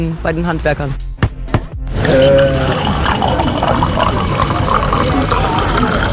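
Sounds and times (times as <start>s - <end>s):
speech: 0.0s - 1.0s, 2.1s - 4.1s
wine pouring into a glass: 2.0s - 6.1s.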